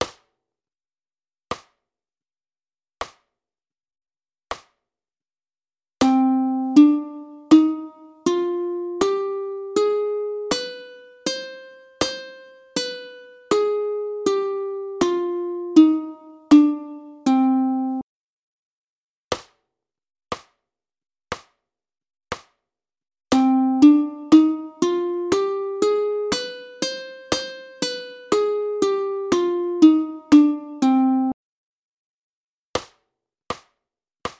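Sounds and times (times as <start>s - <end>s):
ukulele playing a harmonic scale: 6.0s - 18.0s, 23.3s - 31.4s.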